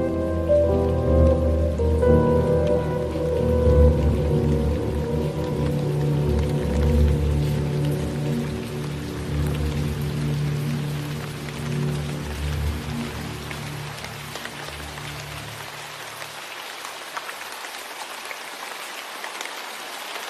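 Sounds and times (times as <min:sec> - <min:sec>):
heavy rain on a stormy autumn afternoon pattering on a surface: 0:00.0 - 0:20.2.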